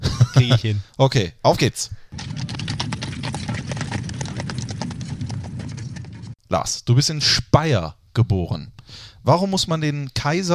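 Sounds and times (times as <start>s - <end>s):
laughter: 0.0s - 0.8s
speech: 0.4s - 2.3s, 6.5s - 10.5s
galloping horse hoofbeats sound effect: 2.1s - 6.4s.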